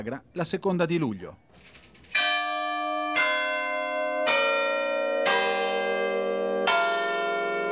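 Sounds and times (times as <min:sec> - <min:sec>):
speech: 0:00.0 - 0:01.8
church bells rung by hand in the traditional way: 0:02.1 - 0:07.6.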